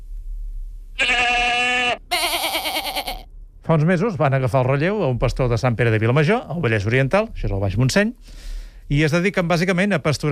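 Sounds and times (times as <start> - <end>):
Rasquera white goats bleating in a grazing herd: 1.0 - 3.3
speech: 3.7 - 10.3.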